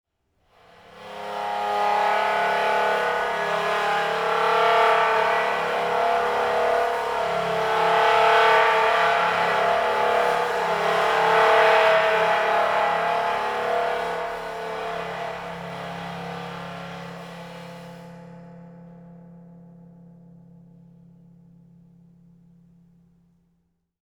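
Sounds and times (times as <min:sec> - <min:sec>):
multiphonic bowed cymbals: 0:00.8 - 0:22.8.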